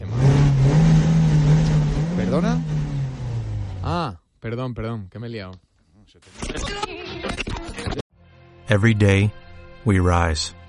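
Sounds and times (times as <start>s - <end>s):
car engine revving and accelerating: 0.0s - 4.0s
speech: 4.5s - 8.0s, 8.7s - 10.6s.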